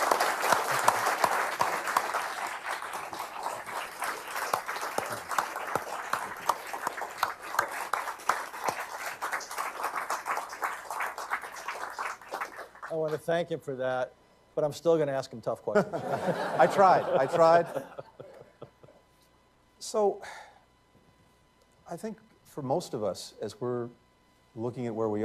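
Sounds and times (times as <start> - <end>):
audience applauding: 0.0 - 13.2
speech: 13.1 - 18.0, 19.9 - 20.4, 22.0 - 24.0, 24.6 - 25.2
laughter: 15.8 - 19.0.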